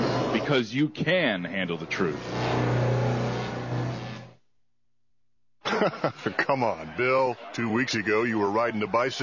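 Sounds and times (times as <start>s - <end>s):
speech: 0.5s - 2.8s, 5.8s - 9.2s
new car engine revving as it arrives: 2.0s - 4.4s
laughter: 5.6s - 9.2s.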